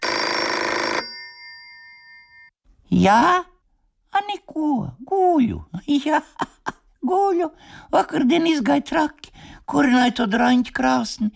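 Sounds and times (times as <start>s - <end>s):
telephone ringing: 0.0s - 2.5s
speech: 2.9s - 3.5s, 4.1s - 11.3s.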